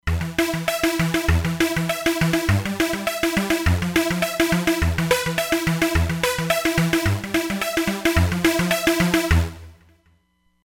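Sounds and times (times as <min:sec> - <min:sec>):
digital synthesizer sequence: 0:00.1 - 0:09.8.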